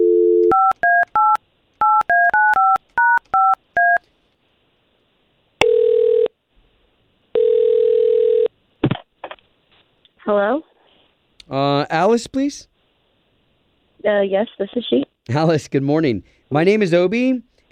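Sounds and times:
telephone ringing tones: 0:00.0 - 0:04.0, 0:05.6 - 0:06.3, 0:07.4 - 0:08.5
telephone keypad tones while dialing: 0:00.1 - 0:04.0
speech: 0:10.3 - 0:10.7, 0:11.5 - 0:12.7, 0:14.0 - 0:17.5.

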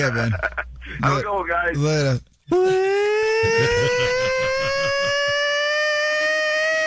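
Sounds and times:
laughter: 0:00.0 - 0:01.2, 0:03.4 - 0:05.5
speech: 0:00.0 - 0:04.5
hockey arena goal siren wailing: 0:02.5 - 0:06.8.

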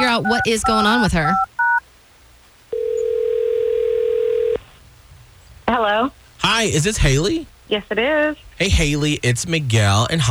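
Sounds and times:
speech: 0:00.2 - 0:01.5, 0:06.0 - 0:10.3
telephone ringback tone heard through the line: 0:00.2 - 0:01.8, 0:02.7 - 0:04.6.

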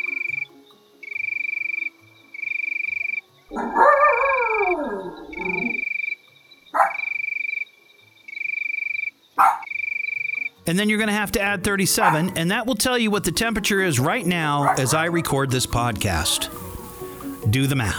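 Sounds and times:
crickets chirping: 0:00.0 - 0:10.7, 0:16.3 - 0:17.6
speech: 0:03.5 - 0:04.0, 0:10.7 - 0:16.7, 0:17.5 - 0:17.9
dog-like bark or howl: 0:03.5 - 0:05.8, 0:06.8 - 0:07.2, 0:09.4 - 0:09.7, 0:12.0 - 0:12.4, 0:14.6 - 0:15.4.

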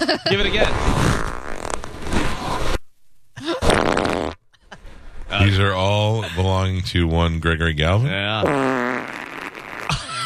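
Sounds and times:
laughter: 0:00.0 - 0:00.7, 0:09.9 - 0:10.2
speech: 0:00.0 - 0:01.3, 0:05.4 - 0:09.2
loud farts from a straining person: 0:00.4 - 0:02.8, 0:03.6 - 0:04.5, 0:08.4 - 0:10.1.

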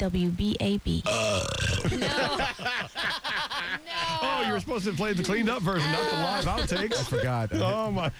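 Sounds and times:
speech: 0:00.0 - 0:08.1
long loud burp: 0:01.0 - 0:02.1
laughter: 0:01.8 - 0:08.1.

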